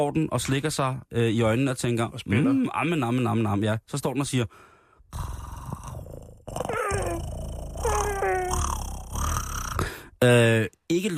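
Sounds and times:
speech: 0.0 - 5.5, 10.2 - 11.1
small cat meowing begging for onions: 6.7 - 7.2, 7.8 - 8.7.

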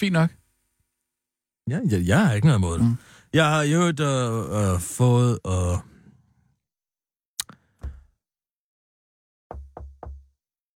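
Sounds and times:
speech: 0.0 - 0.4, 1.7 - 5.9
knocking on wood: 9.5 - 10.3.

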